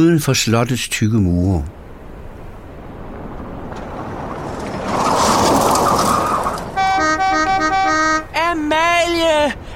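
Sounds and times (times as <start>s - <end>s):
speech: 0.0s - 1.8s
car engine rumbling outside a castle: 1.7s - 9.6s
car horn blaring melodic toots: 6.7s - 8.5s.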